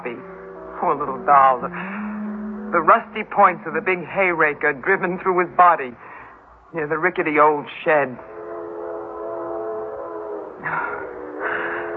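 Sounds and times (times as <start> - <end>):
speech: 0.0 - 2.0, 2.7 - 6.1, 6.7 - 8.3
train whistle blowing: 0.0 - 3.9, 8.2 - 11.9.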